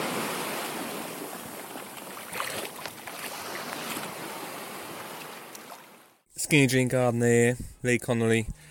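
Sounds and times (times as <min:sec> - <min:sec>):
sea waves breaking on the shore: 0:00.0 - 0:06.2
speech: 0:06.4 - 0:08.5.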